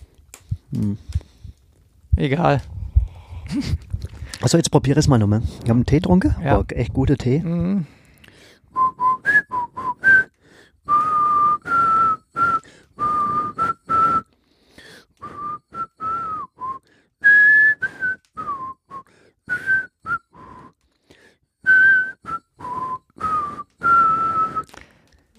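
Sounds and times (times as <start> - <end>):
speech: 0.7 - 1.3, 2.2 - 2.8, 3.5 - 3.8, 4.4 - 8.0
person whistling a tune badly: 8.7 - 14.3, 15.2 - 20.8, 21.6 - 24.8.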